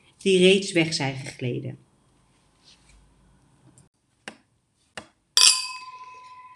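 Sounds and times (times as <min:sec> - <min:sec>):
speech: 0:00.2 - 0:01.9
glasses clinking in a toast: 0:05.4 - 0:06.5.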